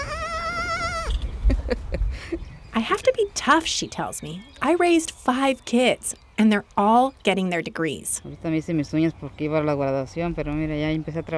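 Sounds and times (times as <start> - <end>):
goat in a pen bleating: 0.0 - 1.2
speech: 1.7 - 11.3.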